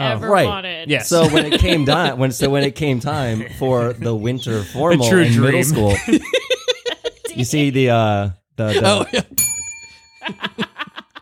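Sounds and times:
speech: 0.1s - 6.4s, 7.4s - 9.4s
laughter: 1.1s - 7.5s, 8.6s - 9.4s, 10.2s - 11.1s
bell ringing with a bright metallic ding: 9.4s - 11.0s.

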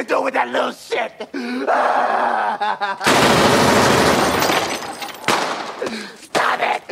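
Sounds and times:
speech: 0.2s - 4.2s, 5.8s - 6.9s
laughter: 1.0s - 3.1s
rapid gunfire: 3.1s - 4.7s.

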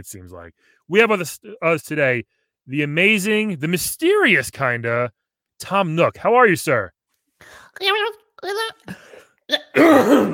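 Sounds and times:
speech: 0.0s - 10.3s
person coughing: 8.9s - 10.3s
person clearing throat: 9.6s - 10.3s.

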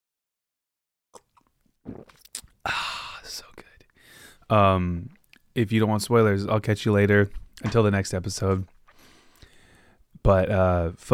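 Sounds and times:
person sipping coffee: 1.2s - 2.6s
short slurping gulp of coffee: 1.2s - 2.6s
speech: 1.8s - 3.5s, 4.5s - 8.8s, 10.3s - 11.1s.

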